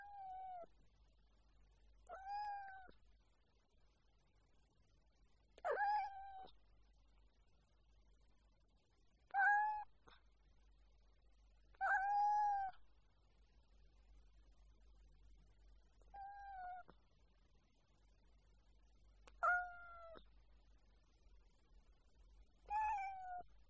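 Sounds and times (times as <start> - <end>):
cat meowing: 2.1 - 3.0, 5.6 - 6.5, 9.3 - 9.9, 11.8 - 12.8, 16.1 - 16.9, 19.4 - 20.2, 22.7 - 23.5.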